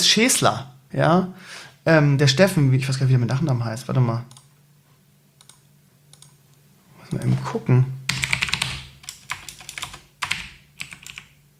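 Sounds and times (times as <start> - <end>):
speech: 0.1 - 4.4, 7.1 - 8.0
typing on a computer keyboard: 5.4 - 6.4, 8.1 - 11.4.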